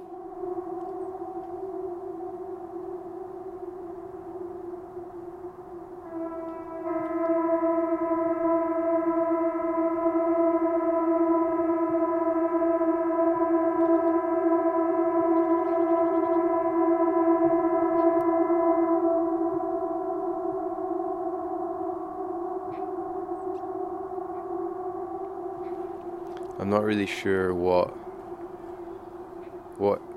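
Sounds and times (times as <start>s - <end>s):
civil defense siren emergency alarm tone from a state alarm test: 0.0s - 30.1s
speech: 26.8s - 28.0s, 29.8s - 30.0s.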